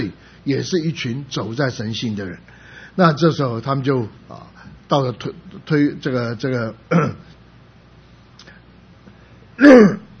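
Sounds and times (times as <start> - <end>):
speech: 0.0 - 7.4, 9.6 - 10.1
man clearing his throat during a spoken Bible teaching: 6.9 - 7.4, 9.6 - 10.1.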